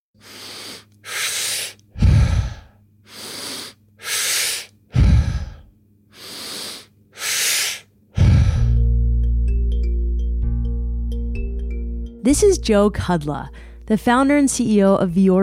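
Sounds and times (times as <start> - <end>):
forceful breathing in through the nose and out through the mouth: 0.2 - 8.9, 13.5 - 13.9
sustained low musical tone: 8.5 - 15.4
speech: 12.2 - 15.4.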